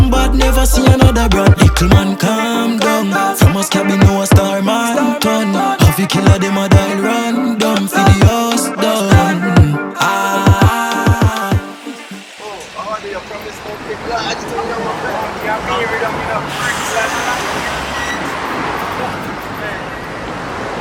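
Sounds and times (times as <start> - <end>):
brief burst of tonal music-like sounds: 0.0 - 14.8
speech: 0.4 - 5.5
steady rush of road noise: 11.9 - 20.7
BMW F30 car passing on a busy street: 12.1 - 20.7.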